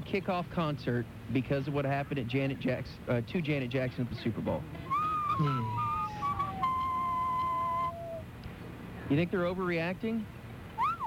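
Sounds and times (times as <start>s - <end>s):
faint noise: 0.0s - 11.0s
speech: 0.1s - 5.8s, 9.1s - 10.4s
person whistling sustained falling notes: 4.9s - 8.2s, 10.8s - 11.0s.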